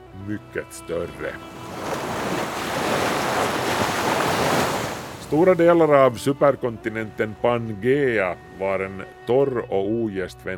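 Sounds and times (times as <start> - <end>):
speech: 0.2 - 1.6, 5.3 - 10.5
ocean waves surging: 1.1 - 6.0
faint windy hiss: 1.1 - 6.4.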